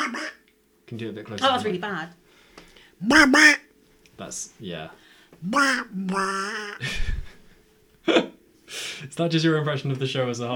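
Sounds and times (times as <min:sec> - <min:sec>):
person imitating a duck quack: 0:00.0 - 0:00.5, 0:03.0 - 0:03.7, 0:05.4 - 0:07.3
speech: 0:00.9 - 0:02.2, 0:03.0 - 0:03.6, 0:04.2 - 0:07.1, 0:08.1 - 0:08.3, 0:09.2 - 0:10.5
laughter: 0:06.2 - 0:07.4.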